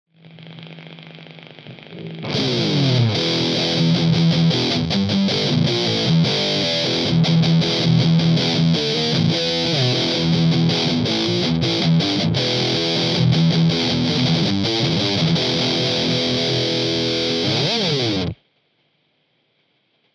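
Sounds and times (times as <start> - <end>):
heavy rhythm guitar through a Plexi combo amp: 1.7 - 18.4.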